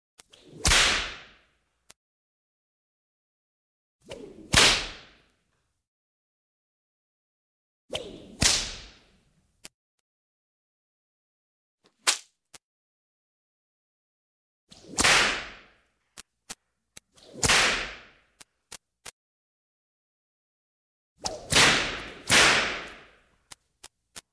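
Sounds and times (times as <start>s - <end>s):
small whip double strikes: 0.2s - 1.5s, 4.0s - 5.3s, 7.9s - 9.1s, 12.0s - 12.3s, 14.7s - 15.8s, 17.2s - 18.3s, 21.2s - 23.2s.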